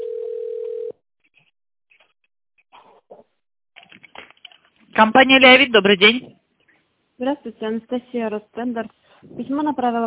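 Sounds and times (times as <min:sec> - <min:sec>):
telephone ringback tone while call is transferred: 0:00.0 - 0:01.0
speech: 0:05.0 - 0:06.4, 0:07.2 - 0:10.0.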